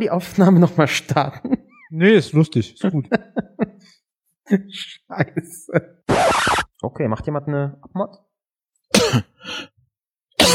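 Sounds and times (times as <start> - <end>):
speech: 0.0 - 8.3, 9.0 - 9.7
person coughing: 8.9 - 9.4, 10.4 - 10.5.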